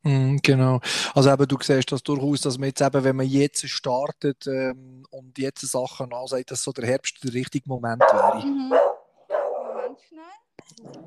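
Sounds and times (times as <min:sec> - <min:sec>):
speech: 0:00.5 - 0:09.0, 0:10.0 - 0:11.0
guard dog barking: 0:08.0 - 0:10.0.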